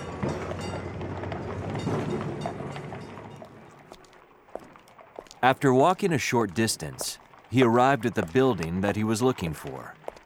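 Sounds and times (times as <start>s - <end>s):
tram rumbling on rails: 0.0s - 4.0s
speech: 5.4s - 10.0s.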